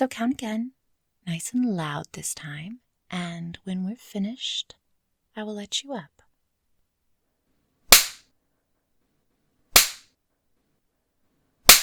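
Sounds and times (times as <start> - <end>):
speech: 0.0 - 4.8, 5.4 - 6.2
spanking slaps on bare buttocks: 7.9 - 8.2, 9.8 - 10.1, 11.7 - 11.8.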